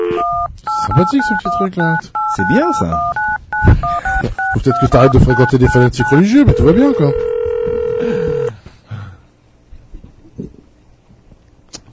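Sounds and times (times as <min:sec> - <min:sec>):
ringback tone on a phone line: 0:00.0 - 0:01.6, 0:02.2 - 0:08.5
speech: 0:01.0 - 0:07.3.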